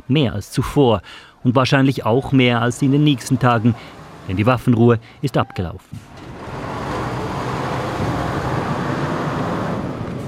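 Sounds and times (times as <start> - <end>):
speech: 0.1 - 6.2
road traffic with trucks driving off: 2.2 - 5.3, 5.9 - 10.2.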